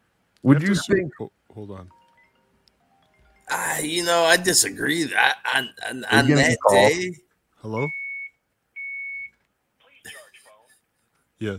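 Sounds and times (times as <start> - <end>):
speech: 0.4 - 2.0, 3.8 - 8.0, 11.4 - 11.5
phone low-battery alert beep: 5.6 - 6.9, 7.8 - 9.3.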